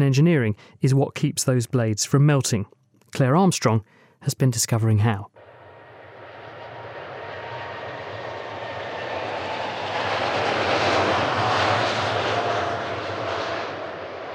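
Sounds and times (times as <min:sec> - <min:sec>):
speech: 0:00.0 - 0:05.4
jet aeroplane engine roaring: 0:05.4 - 0:14.3.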